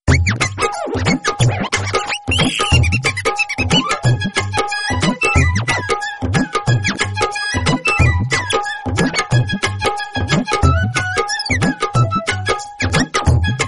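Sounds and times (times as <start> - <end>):
funny background music ringtone: 0.1 - 13.6.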